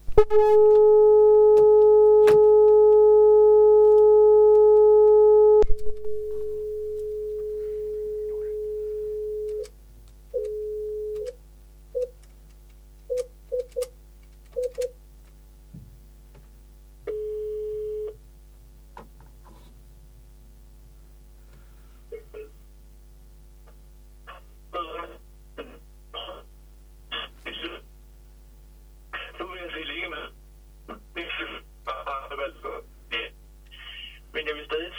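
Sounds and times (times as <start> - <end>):
long steady electronic telephone tone on an outgoing call: 0.1 - 9.7, 10.4 - 11.3, 17.1 - 18.2
plain continuous telephone tone on an outgoing call: 0.2 - 12.2, 13.1 - 15.0, 17.0 - 18.2, 24.2 - 28.2, 29.0 - 34.9.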